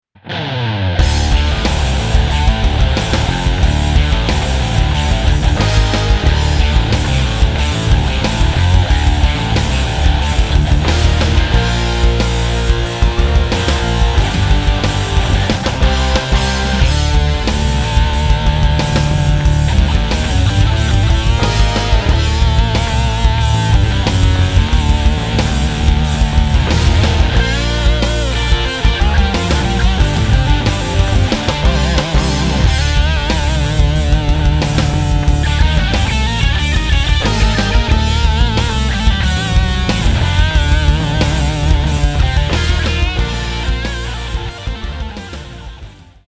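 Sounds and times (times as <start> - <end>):
metal guitar through amp: 0.2 - 46.2.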